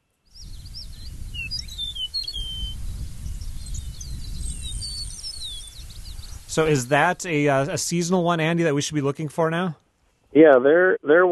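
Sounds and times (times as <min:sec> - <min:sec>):
eastern meadowlark singing clear slurred whistles: 0:00.3 - 0:08.5
other birds chirping and tweeting: 0:00.3 - 0:09.6
speech: 0:06.6 - 0:11.3.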